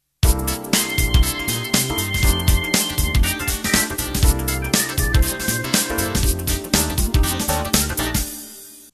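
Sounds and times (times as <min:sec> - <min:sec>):
funk music intro: 0:00.2 - 0:08.9.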